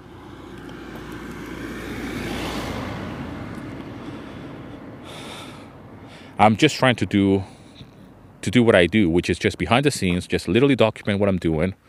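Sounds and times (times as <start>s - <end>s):
car passing by outdoors: 0.0s - 6.4s
speech: 6.4s - 7.6s, 8.4s - 11.8s.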